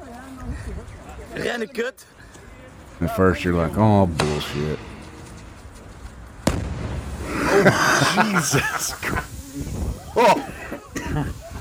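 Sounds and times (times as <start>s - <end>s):
steady noise: 0.0s - 11.5s
speech: 0.6s - 2.2s, 3.0s - 4.9s, 7.6s - 10.5s
firework blast in a tunnel underneath a bridge: 4.2s - 7.5s
laughter: 7.3s - 9.3s, 10.2s - 11.5s.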